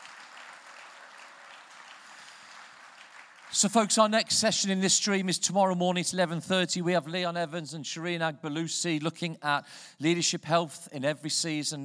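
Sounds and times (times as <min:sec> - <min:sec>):
audience applause: 0:00.0 - 0:04.1
speech: 0:03.5 - 0:11.8.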